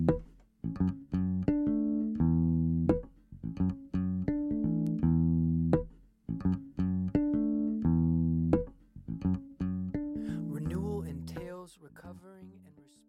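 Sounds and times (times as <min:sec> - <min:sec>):
song with sustained tonal chords and regular rhythmic hits: 0:00.0 - 0:10.4.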